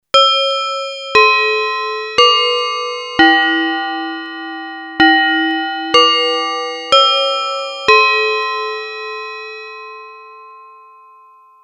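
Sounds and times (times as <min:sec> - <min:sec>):
DX-like FM synthesizer bells on a Yamaha TX81Z: 0:00.1 - 0:11.6.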